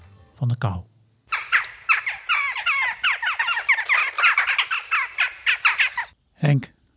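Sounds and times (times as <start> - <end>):
speech: 0.4 - 0.9, 6.4 - 6.8
chattering flock of jackdaws giving short sharp kja calls: 1.3 - 6.2.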